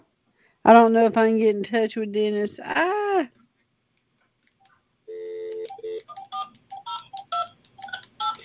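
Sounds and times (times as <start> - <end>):
speech: 0.6 - 3.4
flip phone keypad dialing tones: 5.1 - 8.4.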